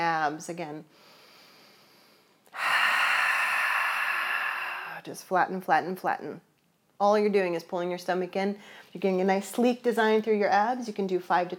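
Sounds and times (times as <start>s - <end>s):
speech: 0.0s - 1.1s, 5.0s - 11.5s
sharp forceful exhale during a seated Pilates abdominal exercise: 1.0s - 5.1s.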